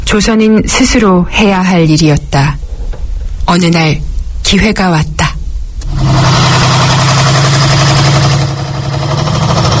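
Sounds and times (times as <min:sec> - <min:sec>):
speech: 0:00.1 - 0:02.6, 0:03.5 - 0:05.2
heavy tractor engine idling: 0:05.9 - 0:09.7.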